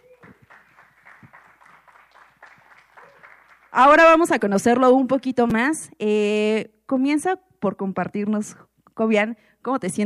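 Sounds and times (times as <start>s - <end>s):
audience applause for a musician: 0.0s - 3.8s
speech: 3.7s - 10.0s.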